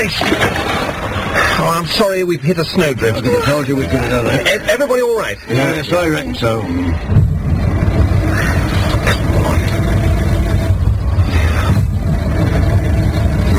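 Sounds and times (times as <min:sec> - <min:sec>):
speech: 0:00.0 - 0:07.4
car engine cranking without catching: 0:00.0 - 0:13.5.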